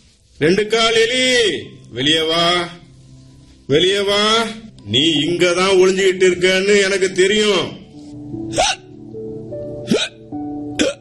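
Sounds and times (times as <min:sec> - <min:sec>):
speech: 0:00.4 - 0:02.8, 0:03.7 - 0:07.8, 0:08.5 - 0:08.8
sharp hiccups with gulping catch and breathy burst: 0:08.5 - 0:09.0, 0:09.8 - 0:10.9.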